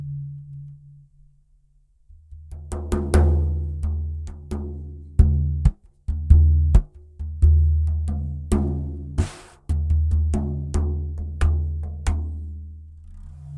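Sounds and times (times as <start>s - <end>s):
frame drum: 2.1s - 12.6s.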